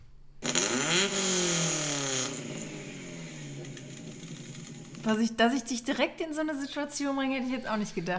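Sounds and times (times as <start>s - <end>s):
old car engine starting and revving: 0.4s - 5.1s
speech: 5.0s - 8.1s.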